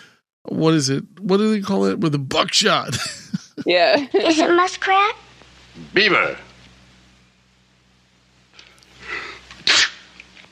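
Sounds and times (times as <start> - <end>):
speech: 0.4 - 5.2, 5.8 - 6.5
laughter: 2.8 - 4.4
exaggerated fake sneeze: 9.6 - 10.1.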